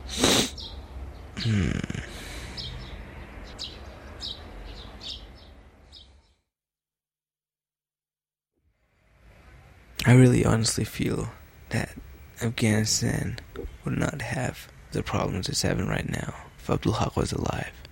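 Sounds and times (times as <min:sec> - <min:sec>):
loud snorting bursts: 0:00.0 - 0:00.6, 0:01.4 - 0:02.6
steady outdoor hiss: 0:00.0 - 0:00.7, 0:09.9 - 0:15.2
birds chirping at sunrise: 0:00.0 - 0:06.5, 0:10.0 - 0:17.8
speech: 0:01.4 - 0:02.0, 0:10.1 - 0:17.8.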